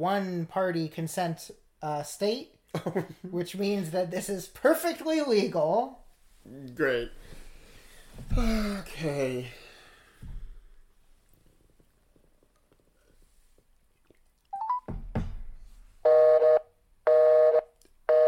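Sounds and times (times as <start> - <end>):
speech: 0.0 - 7.4, 8.2 - 9.6
telephone busy signal: 14.6 - 14.9, 16.1 - 18.2.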